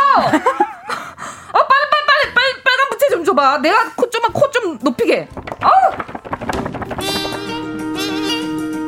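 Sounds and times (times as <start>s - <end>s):
laughter: 0.1s - 2.3s
speech: 0.2s - 0.6s, 3.4s - 6.0s
quick percussive knocking in Korean folk music: 5.0s - 8.7s
steady drumming in traditional Korean festive folk music: 5.2s - 8.7s.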